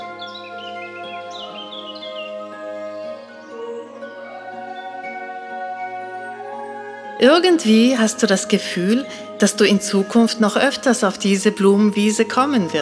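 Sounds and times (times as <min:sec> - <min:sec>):
birds chirping and tweeting: 0:00.0 - 0:12.8
steady sustained musical drone: 0:00.0 - 0:12.8
speech: 0:07.2 - 0:12.8.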